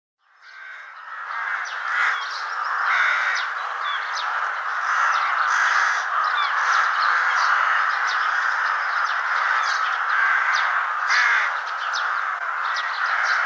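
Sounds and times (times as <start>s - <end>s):
flock of rooks crying: 0.2s - 13.4s.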